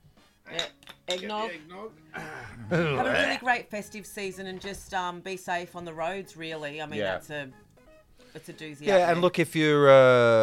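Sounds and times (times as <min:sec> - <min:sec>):
glasses clinking together in a toast: 0:00.5 - 0:01.6
speech: 0:00.5 - 0:07.6, 0:08.4 - 0:10.4
laughter: 0:02.2 - 0:03.4.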